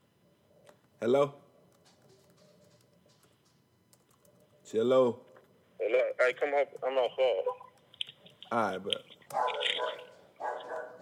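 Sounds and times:
speech: 0:01.0 - 0:01.4, 0:04.7 - 0:05.2, 0:05.8 - 0:07.7, 0:08.5 - 0:10.0
dogs barking: 0:09.3 - 0:11.0.

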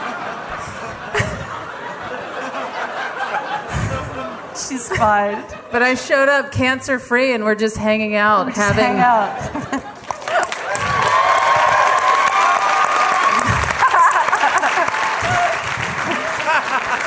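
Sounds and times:
laughter: 0:00.0 - 0:06.2, 0:08.6 - 0:11.9, 0:12.7 - 0:17.0
speech: 0:04.6 - 0:09.9
large audience applause: 0:09.8 - 0:17.0
crowd whooping and cheering: 0:10.0 - 0:17.0.

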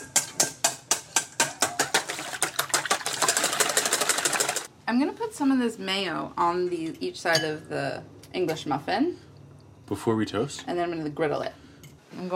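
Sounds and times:
eggs being whisked in a bowl: 0:00.1 - 0:04.7
speech: 0:05.3 - 0:09.2, 0:09.9 - 0:12.3.

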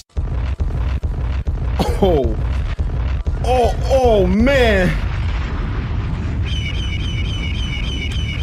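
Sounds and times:
loud heavy rumbling roar: 0:00.1 - 0:08.4
speech: 0:02.0 - 0:02.5, 0:03.5 - 0:05.0
shrill wavering eagle screech: 0:06.3 - 0:08.4.

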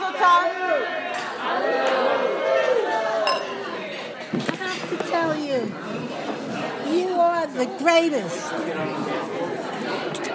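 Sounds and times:
lively room of chattering voices: 0:00.0 - 0:10.3
glasses clinking in a toast: 0:03.3 - 0:03.7
speech: 0:07.6 - 0:10.1.

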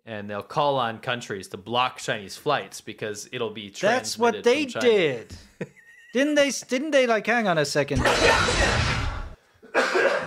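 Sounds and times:
speech: 0:00.1 - 0:09.0
person coughing harshly: 0:09.6 - 0:10.2.

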